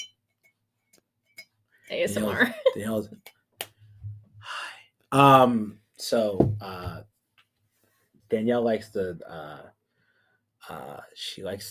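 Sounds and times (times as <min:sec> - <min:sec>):
drinking glass being handled, clinking: 0:00.0 - 0:00.5
speech: 0:01.9 - 0:03.4, 0:05.1 - 0:07.1, 0:08.3 - 0:09.8, 0:10.7 - 0:11.6.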